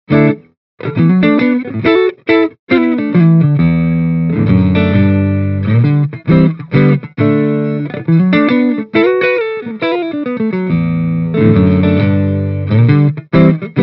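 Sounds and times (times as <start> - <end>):
clean Stratocaster through Nordik Gjallarhorn with Mini Rox mic inside: 0.1 - 13.8.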